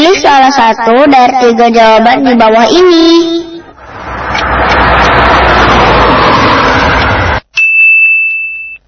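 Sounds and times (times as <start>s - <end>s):
speech: 0.0s - 3.5s
car engine and road noise: 1.9s - 7.6s
bright ringing chime: 7.6s - 8.8s.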